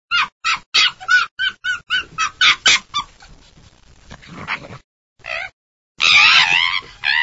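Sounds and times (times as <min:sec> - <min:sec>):
fox cubs calling: 0:00.2 - 0:03.4, 0:05.2 - 0:07.2.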